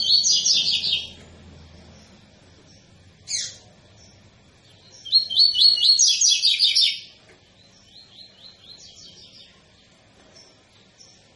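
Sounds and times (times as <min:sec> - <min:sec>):
Double-collared seedeater singing tui-tui tutor song: 0:00.0 - 0:01.2, 0:02.7 - 0:09.6.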